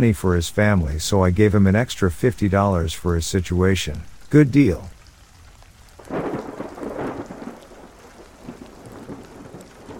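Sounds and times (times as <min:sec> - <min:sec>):
speech: 0:00.0 - 0:04.9
steady rain hissing in a thunderstorm: 0:00.0 - 0:09.9
deep rolling rumble of thunder: 0:06.0 - 0:09.9.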